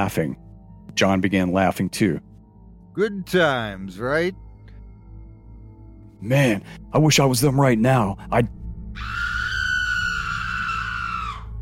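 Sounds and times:
speech: 0.0s - 0.4s, 1.0s - 2.3s, 3.0s - 4.4s, 6.2s - 9.3s
piercing high-pitched scream echoing through a valley: 8.9s - 11.6s.

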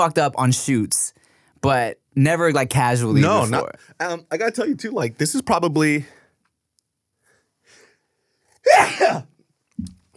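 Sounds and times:
speech: 0.0s - 6.2s, 8.6s - 9.9s
loud sneeze: 8.6s - 9.4s.

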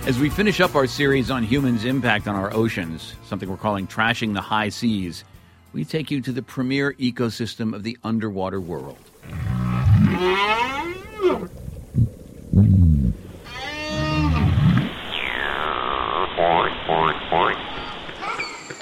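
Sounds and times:
speech: 0.1s - 9.6s
whale grunts: 9.2s - 14.9s
whales singing underwater: 9.2s - 18.7s.

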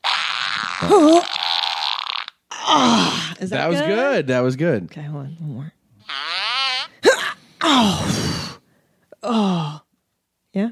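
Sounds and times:
voice imitating a fart: 0.0s - 3.3s, 6.0s - 7.4s
speech: 0.8s - 1.6s, 2.7s - 6.2s, 7.6s - 8.4s, 9.2s - 9.8s, 10.6s - 10.7s.

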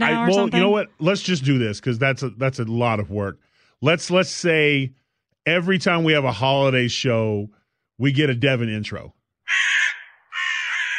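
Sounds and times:
speech: 0.1s - 9.6s
harsh raspy crow caws: 9.4s - 10.9s.

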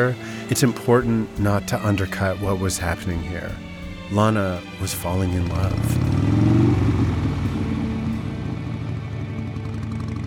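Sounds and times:
speech: 0.0s - 6.5s
motorcycle engine rumbling at a low pitch: 0.0s - 10.2s.

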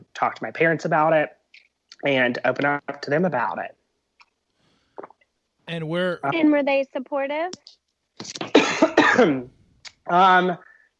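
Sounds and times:
speech: 0.2s - 1.4s, 2.0s - 3.8s, 5.7s - 8.5s, 9.2s - 10.7s
person coughing from a tickle in the throat: 8.6s - 9.4s.

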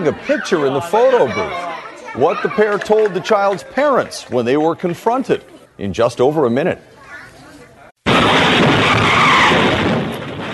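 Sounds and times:
speech: 0.0s - 6.9s
city bus crashing through building wall: 8.1s - 10.5s.

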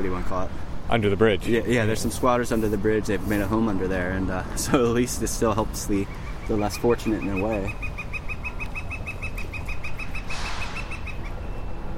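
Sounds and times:
speech: 0.0s - 7.9s
woodpecker calling: 4.9s - 11.9s.

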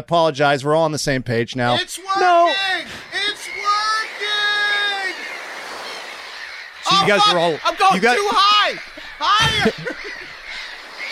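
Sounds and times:
speech: 0.0s - 3.1s, 6.9s - 8.8s, 9.5s - 9.9s
laughter: 1.7s - 6.1s, 6.8s - 11.1s
bird squawking: 1.7s - 11.1s.

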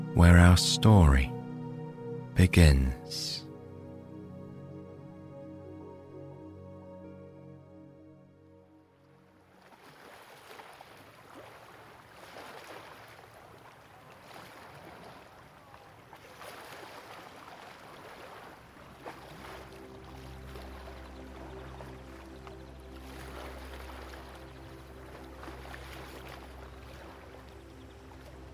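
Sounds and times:
speech: 0.2s - 1.4s, 2.4s - 3.4s
gentle lake waves lapping and splashing: 9.3s - 28.5s.

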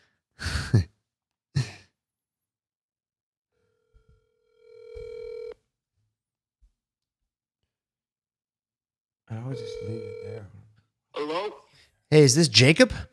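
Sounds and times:
speech: 0.7s - 0.9s, 11.2s - 13.1s
telephone ring tone as a call is placed: 4.3s - 5.6s, 9.5s - 10.5s.

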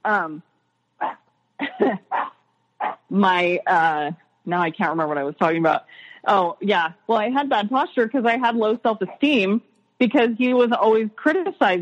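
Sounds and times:
speech: 0.0s - 0.5s, 1.8s - 2.2s, 3.1s - 11.8s
dog barking: 2.1s - 3.1s.

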